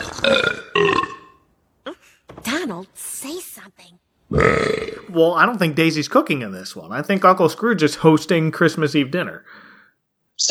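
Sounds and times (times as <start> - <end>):
loud drawn-out throaty burp: 0.0 - 1.5, 4.3 - 5.3
speech: 0.2 - 0.6, 5.1 - 9.7.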